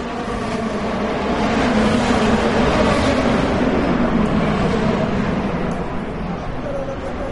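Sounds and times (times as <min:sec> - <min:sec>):
powerful race car engines of up to 800 horsepower roaring: 0:00.0 - 0:07.3.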